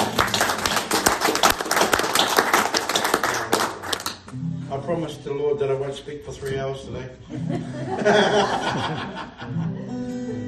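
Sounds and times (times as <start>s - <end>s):
audience clapping: 0.0s - 4.3s
speech: 4.9s - 10.0s
laughter: 7.2s - 9.9s.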